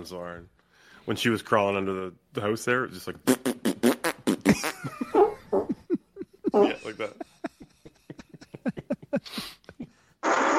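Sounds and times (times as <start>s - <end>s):
speech: 0.0s - 3.6s
comic fart sound effects from a soundboard: 3.2s - 4.9s, 10.2s - 10.5s
laughter: 4.5s - 10.0s.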